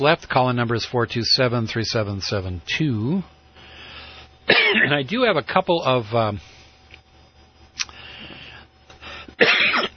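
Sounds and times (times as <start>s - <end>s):
speech: 0.0s - 3.4s, 4.7s - 6.5s
low steady hum: 0.0s - 9.9s
person coughing: 4.5s - 5.0s, 9.4s - 9.9s.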